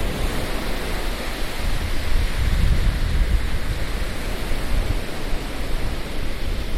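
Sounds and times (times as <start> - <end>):
ocean waves breaking on a beach: 0.0 - 6.7
wind blowing across the microphone: 0.0 - 6.7.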